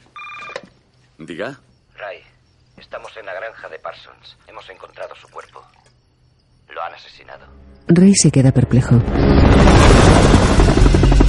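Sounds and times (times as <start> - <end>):
speech: 1.2 - 5.8, 6.7 - 11.2
helicopter with a searchlight rotor and engine roar: 9.0 - 11.2.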